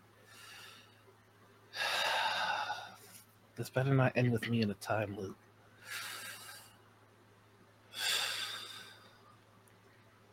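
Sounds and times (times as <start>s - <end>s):
deep breath: 0.2s - 1.0s, 1.8s - 3.2s, 5.8s - 6.7s, 7.9s - 9.2s
speech: 3.6s - 6.0s.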